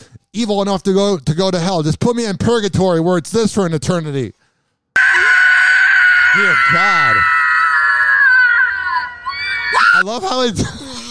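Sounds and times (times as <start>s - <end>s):
speech: 0.4s - 4.4s, 6.3s - 7.3s, 10.0s - 10.8s
long shrill recorded scream: 5.0s - 10.1s.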